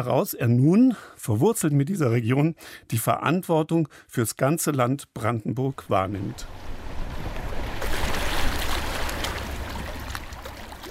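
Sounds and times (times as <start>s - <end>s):
speech: 0.0s - 6.7s
river water gently babbling: 5.7s - 10.8s.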